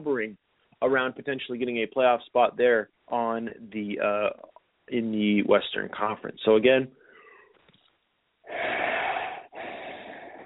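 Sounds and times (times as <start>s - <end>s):
speech: 0.0s - 7.0s
person yawning: 8.5s - 10.4s.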